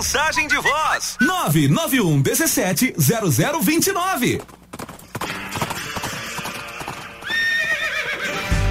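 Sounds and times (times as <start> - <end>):
speech: 0.0 - 4.6
horse hooves galloping: 3.7 - 8.5
horse whinnying: 5.1 - 8.6.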